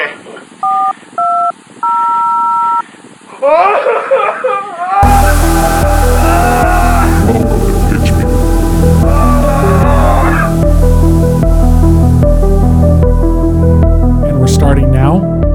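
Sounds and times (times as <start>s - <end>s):
telephone number dialed with touch-tones: 0.6s - 2.8s
laughter: 3.3s - 10.5s
loud dense music: 5.0s - 15.5s.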